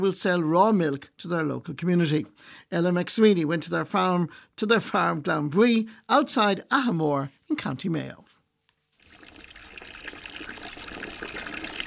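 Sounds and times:
speech: 0:00.0 - 0:08.2
water pouring into a large bucket: 0:08.9 - 0:11.8.

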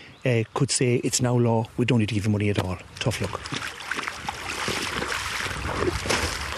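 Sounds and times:
speech: 0:00.2 - 0:03.8
river water flowing: 0:03.0 - 0:06.5
wind buffeting: 0:04.1 - 0:06.5.

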